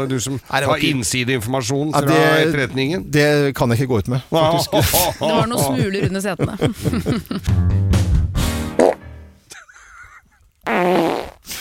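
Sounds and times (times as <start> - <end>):
speech: 0.0 - 8.0
laughter: 4.3 - 7.5, 9.5 - 10.5
loud low blubbery fart noises: 8.6 - 9.2, 10.6 - 11.6.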